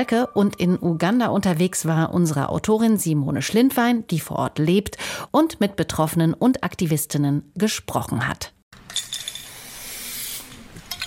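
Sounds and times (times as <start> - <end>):
speech: 0.0 - 9.2
spray can spraying black graffiti paint onto a linoleum floor: 9.0 - 10.7.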